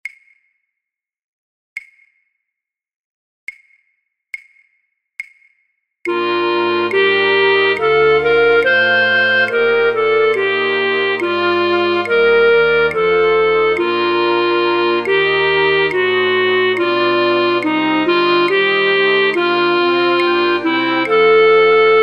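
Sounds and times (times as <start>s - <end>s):
flute orchestra playing third flute parts: 6.1s - 22.0s.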